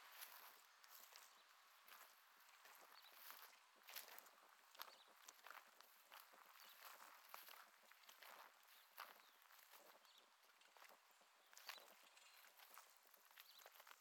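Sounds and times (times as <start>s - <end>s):
footsteps on gravel at an industrial wasteland: 0.2s - 13.9s.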